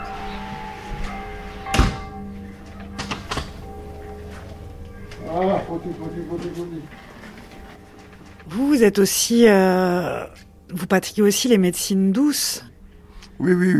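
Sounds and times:
steady low hum: 0:00.0 - 0:13.7
door shutting with a solid thud: 0:01.0 - 0:02.2
speech: 0:05.3 - 0:07.1, 0:08.5 - 0:12.7, 0:13.4 - 0:13.7.

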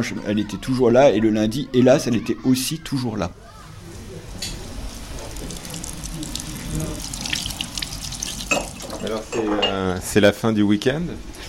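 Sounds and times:
speech: 0:00.0 - 0:03.6, 0:09.0 - 0:11.3
water running from a kitchen tap into a sink: 0:04.8 - 0:09.4
dishes clinking while being washed: 0:08.3 - 0:09.9.

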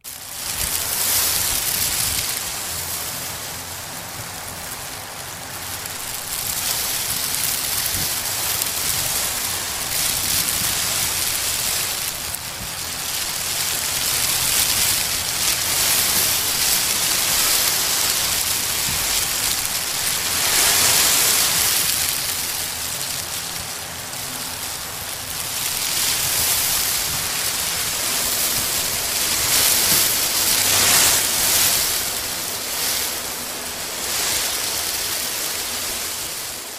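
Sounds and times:
countless plastic bags rustling stirred by fans: 0:00.1 - 0:36.7.

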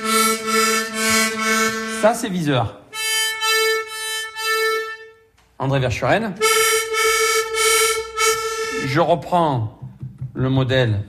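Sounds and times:
reedy accordion chord shaped with a small registration device: 0:00.0 - 0:05.4, 0:06.4 - 0:09.1
speech: 0:02.0 - 0:02.8, 0:05.6 - 0:06.5, 0:08.8 - 0:11.0.

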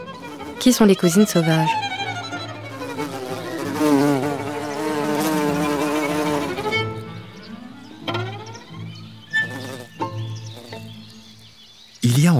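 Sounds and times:
wild bees buzzing in flight: 0:00.0 - 0:11.1
speech: 0:00.6 - 0:01.9.

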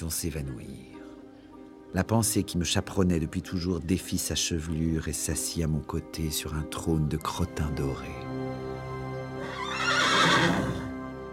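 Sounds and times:
speech: 0:00.0 - 0:01.0, 0:01.9 - 0:08.4
horse whinnying in a circus ring: 0:09.4 - 0:11.0.

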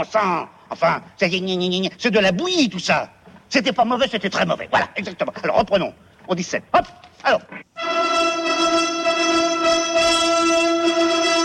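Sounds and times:
speech: 0:00.0 - 0:07.7
orchestra playing a brass-heavy Hungarian march chord: 0:07.8 - 0:11.4.

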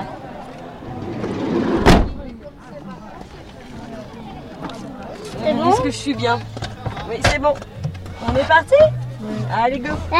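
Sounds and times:
faint indistinct voices: 0:00.0 - 0:10.1
car door closing: 0:01.3 - 0:02.3
speech: 0:05.8 - 0:10.1.

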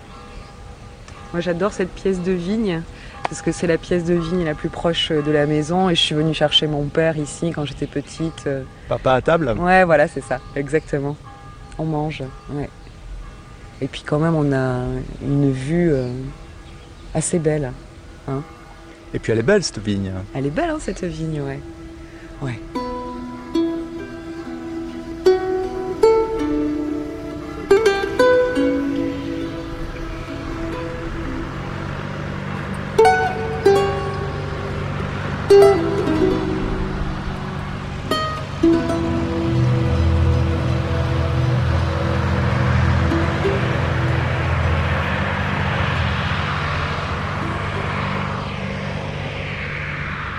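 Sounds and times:
speech: 0:01.3 - 0:12.8, 0:13.8 - 0:16.4, 0:17.2 - 0:21.8, 0:22.4 - 0:22.8
huge agricultural vineyard machine engine droning among rows of vines in Listrac-Médoc: 0:17.8 - 0:50.3.

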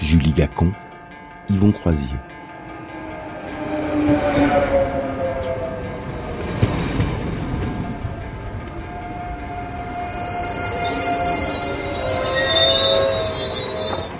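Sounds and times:
speech: 0:00.1 - 0:00.8, 0:01.5 - 0:02.3
train crossing the Alps between France and Italy rolling on rails: 0:02.4 - 0:14.1
train wheels letting out high metallic squeals: 0:08.9 - 0:14.1.

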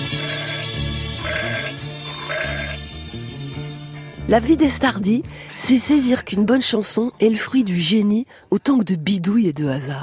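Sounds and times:
goat bleating: 0:00.1 - 0:02.8
speech: 0:04.3 - 0:10.0.

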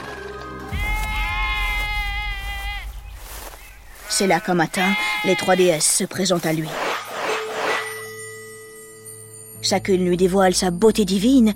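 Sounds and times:
sheep grazing on Mount Ida bleating: 0:00.7 - 0:06.5
speech: 0:04.2 - 0:06.8, 0:09.6 - 0:11.5.

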